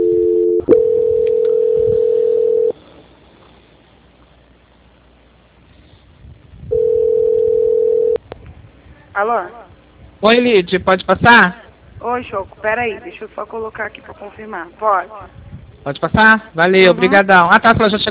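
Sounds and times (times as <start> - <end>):
steady mid-pitched telephone tone during a call transfer: 0.0 - 2.8, 6.7 - 8.2
speech: 9.2 - 9.6, 10.2 - 18.0.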